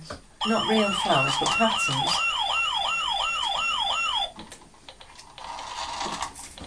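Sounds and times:
speech: 0:00.4 - 0:02.3
ambulance siren wailing: 0:00.4 - 0:04.3.

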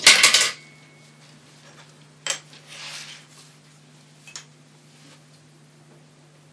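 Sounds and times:
dishes clattering while being washed: 0:00.0 - 0:00.7
light dish clinks: 0:00.0 - 0:01.0
low steady hum: 0:00.0 - 0:06.5.

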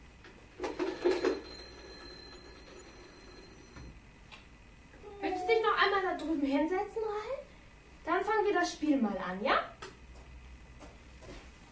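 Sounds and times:
faint steady hum: 0:00.0 - 0:11.7
telephone bell ringing: 0:00.6 - 0:04.0
speech: 0:06.4 - 0:07.3, 0:08.5 - 0:09.7.

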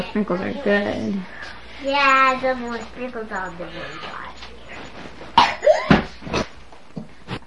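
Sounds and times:
speech: 0:00.2 - 0:04.2
harsh forceful coughing fit: 0:05.3 - 0:06.5.

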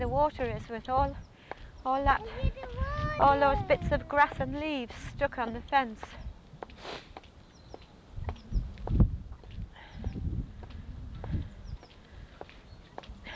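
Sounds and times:
speech: 0:00.0 - 0:06.2, 0:06.8 - 0:07.1
bird singing overhead beside a flooded path: 0:07.3 - 0:10.2, 0:11.5 - 0:13.1.

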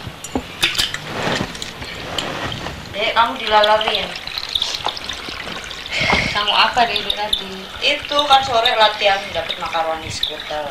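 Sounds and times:
spoon stirring: 0:00.0 - 0:10.6
light metallic clinks and scrapes: 0:00.2 - 0:02.7
speech: 0:03.0 - 0:04.2, 0:06.4 - 0:10.6.

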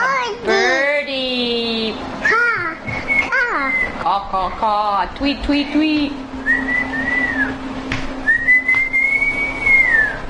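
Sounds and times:
low hum: 0:00.0 - 0:10.2
person whistling sustained tones: 0:03.0 - 0:04.0, 0:06.4 - 0:07.6, 0:08.3 - 0:10.2
speech: 0:04.2 - 0:06.2.

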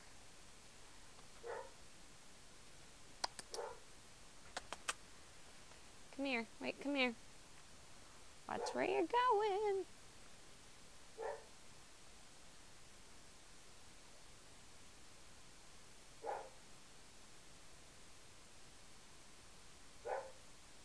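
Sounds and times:
steady hiss: 0:00.0 - 0:20.8
dog barking: 0:01.4 - 0:01.8, 0:03.5 - 0:03.9, 0:11.2 - 0:11.5, 0:16.2 - 0:16.6, 0:20.0 - 0:20.4
speech: 0:06.2 - 0:07.3, 0:08.5 - 0:10.0.

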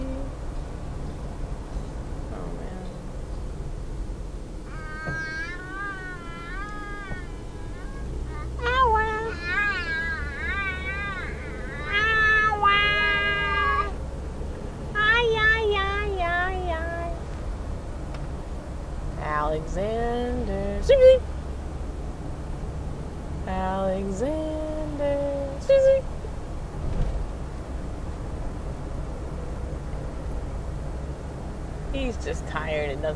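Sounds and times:
steady low rumble: 0:00.0 - 0:33.1
cat meowing in drawn-out wavering cries: 0:04.7 - 0:13.9.

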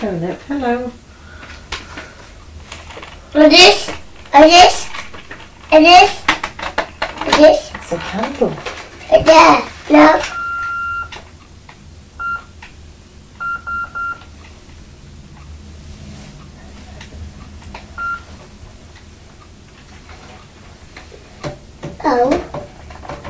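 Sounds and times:
speech: 0:00.0 - 0:01.1, 0:03.3 - 0:04.9, 0:05.7 - 0:06.2, 0:07.4 - 0:10.4
telephone answering machine beeping: 0:10.3 - 0:11.2, 0:12.2 - 0:12.6, 0:13.4 - 0:14.4, 0:17.9 - 0:18.4.

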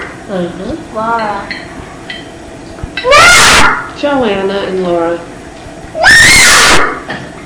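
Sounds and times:
speech: 0:00.3 - 0:01.7, 0:03.0 - 0:05.3
child yelling loudly high-pitched: 0:03.0 - 0:03.9, 0:06.0 - 0:07.1.

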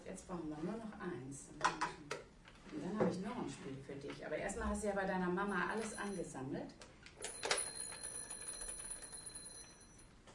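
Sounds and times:
speech: 0:00.1 - 0:06.9
toy telephone bell ringing from a pressed button: 0:05.7 - 0:06.4, 0:07.2 - 0:10.1.

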